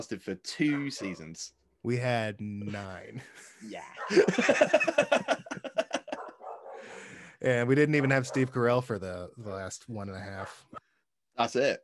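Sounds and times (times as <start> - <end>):
speech: 0.0 - 5.8, 6.8 - 10.8, 11.4 - 11.8
dog barking: 0.6 - 1.3, 6.1 - 7.1, 7.9 - 8.6, 10.3 - 10.8
laughter: 2.7 - 7.0.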